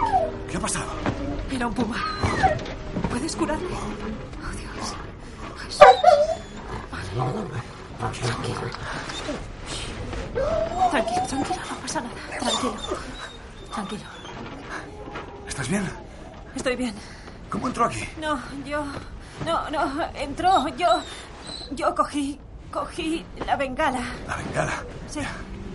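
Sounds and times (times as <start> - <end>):
dog being held whimpering and yipping: 0.0 - 0.4, 2.0 - 2.7, 5.8 - 6.7, 10.4 - 11.8, 12.4 - 14.5, 20.8 - 21.8
speech: 0.6 - 5.1, 7.1 - 14.2, 15.6 - 16.0, 16.6 - 25.5.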